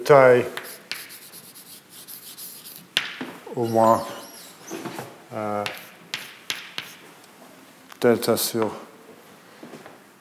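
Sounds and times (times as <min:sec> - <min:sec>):
speech: 0:00.1 - 0:00.6, 0:03.6 - 0:04.2, 0:05.3 - 0:05.8, 0:08.0 - 0:08.9
writing tool striking down on a surface: 0:00.6 - 0:01.2, 0:03.0 - 0:03.3, 0:05.6 - 0:07.0
handwriting scratching across a surface: 0:00.6 - 0:04.6, 0:05.6 - 0:07.0.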